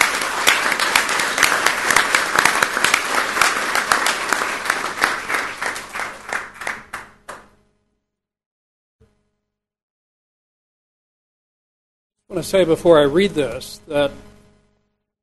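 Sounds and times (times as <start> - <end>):
people clapping at a board of trustees meeting: 0.0 - 7.6
speech: 12.4 - 14.3.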